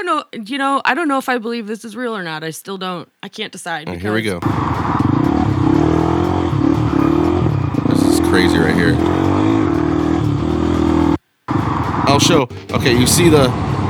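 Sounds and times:
speech: 0.0 - 5.4, 8.4 - 9.3, 12.2 - 13.7
loud car engine revving in a played video: 3.9 - 13.8.

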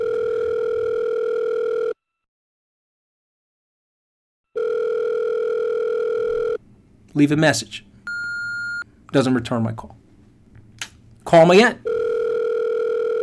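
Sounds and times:
telephone dial tone: 0.0 - 2.0, 4.6 - 6.6, 8.1 - 8.8, 11.8 - 13.2
speech: 7.2 - 7.9, 9.1 - 10.0, 11.3 - 11.9.

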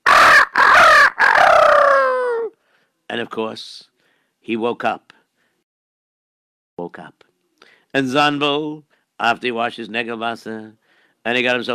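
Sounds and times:
rooster crowing: 0.0 - 2.5
speech: 3.2 - 5.2, 6.8 - 7.3, 7.9 - 11.7.

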